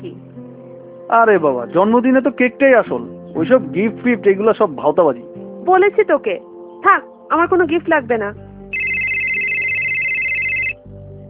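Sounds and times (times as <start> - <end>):
speech: 1.1 - 8.4
electronic phone ringtone: 8.7 - 10.8.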